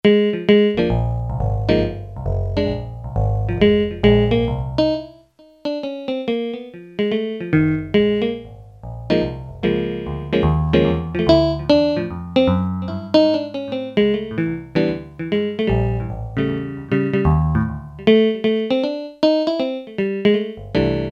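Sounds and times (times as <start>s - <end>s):
Yamaha PSR-300 keyboard jazz guitar tone: 0.0s - 21.1s.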